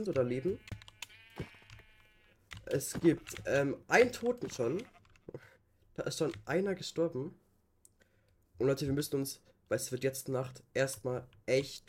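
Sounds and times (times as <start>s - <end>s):
speech: 0.0s - 0.8s, 1.4s - 1.6s, 2.7s - 7.4s, 8.6s - 11.8s
video game sheep bleating: 0.0s - 4.9s
keyboard clicks: 0.0s - 5.4s.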